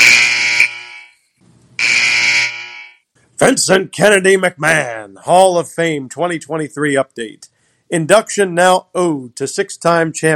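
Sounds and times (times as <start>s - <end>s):
loud harsh electronic buzzer: 0.0s - 1.2s, 1.8s - 3.0s
speech: 3.4s - 10.3s.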